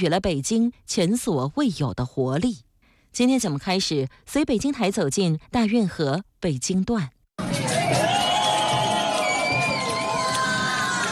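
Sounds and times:
speech: 0:00.0 - 0:07.6
large crowd cheering and shouting at dragon boat race: 0:07.4 - 0:11.1.

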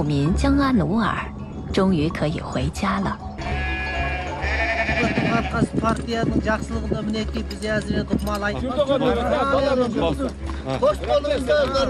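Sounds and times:
speech: 0:00.0 - 0:03.6, 0:05.0 - 0:11.8
flock of sheep bleating on a cold windy pasture: 0:03.4 - 0:05.9.

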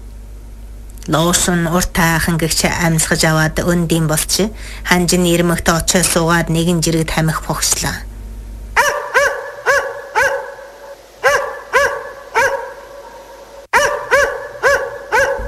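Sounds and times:
speech: 0:01.0 - 0:08.1
dog barking: 0:08.8 - 0:15.4.

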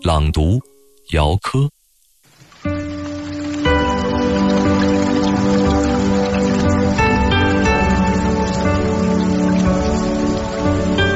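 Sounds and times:
gentle music: 0:00.0 - 0:01.4, 0:02.3 - 0:11.1
speech: 0:00.0 - 0:01.8
steady rain: 0:01.9 - 0:11.1.

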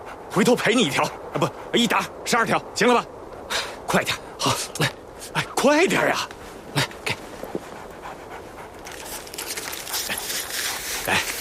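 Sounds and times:
injured three-legged wolf panting: 0:00.0 - 0:02.2, 0:06.3 - 0:11.3
speech: 0:00.4 - 0:06.4.

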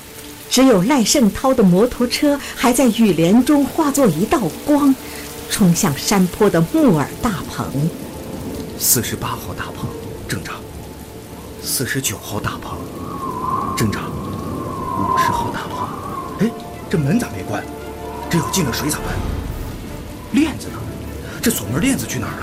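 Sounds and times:
heavy rainstorm downpour: 0:00.0 - 0:22.4
voice over the downpour: 0:00.5 - 0:07.9, 0:11.7 - 0:12.9, 0:13.7 - 0:14.2, 0:14.9 - 0:19.3, 0:20.3 - 0:22.4
gusting strong wind: 0:01.1 - 0:22.4
rumbles in a rainstorm: 0:06.2 - 0:22.4.

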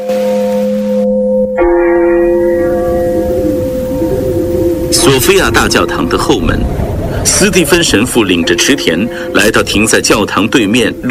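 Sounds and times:
sustained church bell ringing note: 0:00.0 - 0:06.9, 0:08.2 - 0:09.6
deep church bell ringing: 0:00.0 - 0:11.0
speech: 0:05.0 - 0:11.0.

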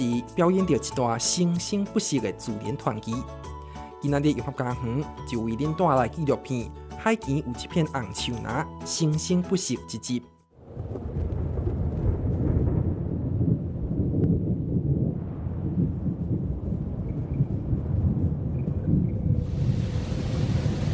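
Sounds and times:
speech: 0:00.0 - 0:11.0
gale winds roaring on a subtropical sea in the summer-autumn season: 0:10.6 - 0:20.9
huge waves crashing on a subtropical sea in the summer-autumn season: 0:19.4 - 0:20.9.

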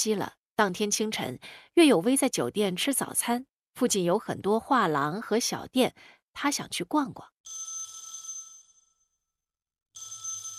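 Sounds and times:
speech: 0:00.0 - 0:07.6
telephone ringing with a bright metallic bell tone: 0:07.5 - 0:09.0, 0:10.0 - 0:10.5.

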